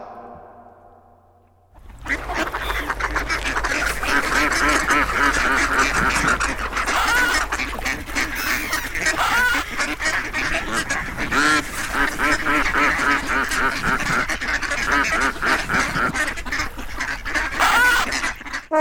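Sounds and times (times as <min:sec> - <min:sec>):
chorus of many ducks quacking: 0:01.8 - 0:18.7.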